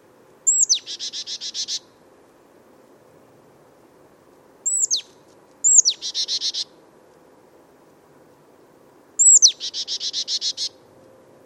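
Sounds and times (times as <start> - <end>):
marsh tit Poecile palustris calls: 0.5 - 1.9, 4.6 - 6.8, 9.2 - 10.8.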